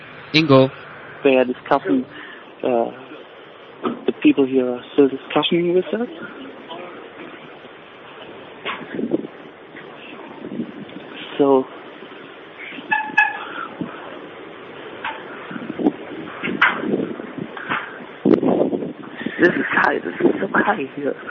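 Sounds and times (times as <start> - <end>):
speech: 0.3 - 3.0, 3.8 - 6.5
strong wind rushing and buffeting at a high place: 6.1 - 21.2.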